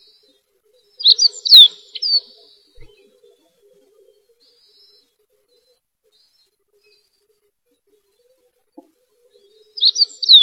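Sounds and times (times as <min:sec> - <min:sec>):
birds chirping and whistling in a home orchard: 0:01.0 - 0:02.3, 0:09.8 - 0:10.4.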